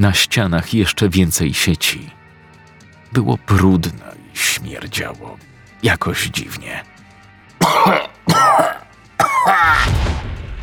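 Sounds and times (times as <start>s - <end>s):
speech: 0.0s - 2.2s, 3.1s - 6.9s, 7.6s - 8.8s
harsh, strained choking coughs with wheezing rasp: 7.6s - 9.8s.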